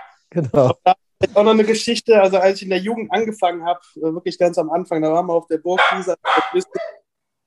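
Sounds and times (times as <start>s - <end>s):
speech: 0.3s - 7.0s
small dogs barking: 5.8s - 7.0s.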